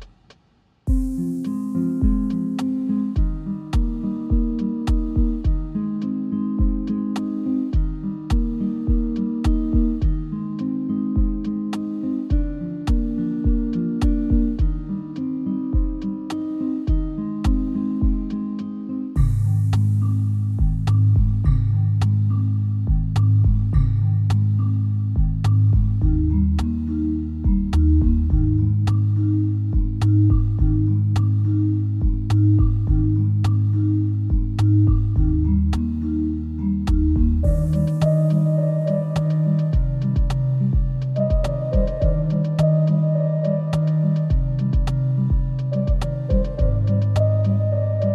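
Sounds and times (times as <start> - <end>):
ensemble playing in E flat major: 0.9 - 48.1.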